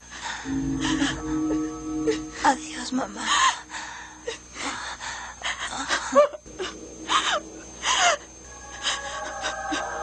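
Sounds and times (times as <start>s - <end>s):
speech: 0.4s - 3.4s
mother and daughter crying while embracing: 0.4s - 10.0s.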